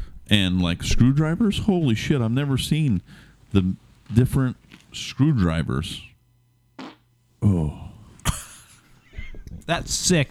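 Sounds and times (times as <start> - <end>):
speech: 0.3 - 6.1, 7.4 - 7.9, 9.6 - 10.2
fart: 6.8 - 7.1.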